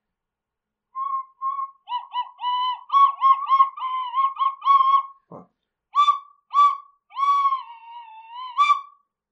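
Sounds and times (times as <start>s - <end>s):
tin whistle playing: 1.0s - 5.2s, 5.9s - 9.0s.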